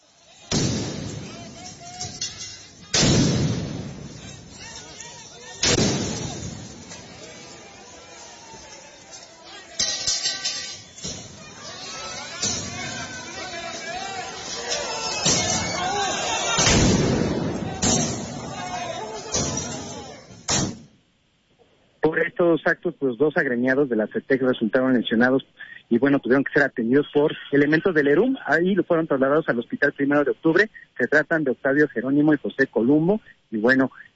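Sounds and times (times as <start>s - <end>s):
protest crowd shouting in a street confrontation: 0.0s - 20.5s
large firecrackers and tear gas fired by police at protesters: 0.5s - 1.8s, 2.9s - 4.6s, 5.6s - 6.9s, 16.6s - 18.5s
speech: 22.6s - 34.1s.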